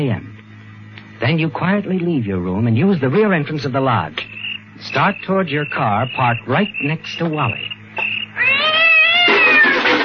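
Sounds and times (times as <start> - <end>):
speech: 0.0 - 0.3, 1.2 - 7.8
cat yowling: 8.3 - 10.0.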